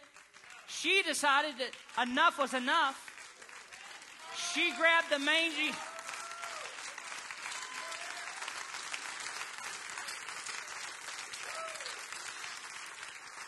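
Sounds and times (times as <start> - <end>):
audience applause: 0.0 - 0.7, 3.0 - 13.4
speech: 0.8 - 3.0, 4.5 - 5.9
faint audience whoops: 5.8 - 6.8, 7.4 - 8.4, 11.4 - 12.1.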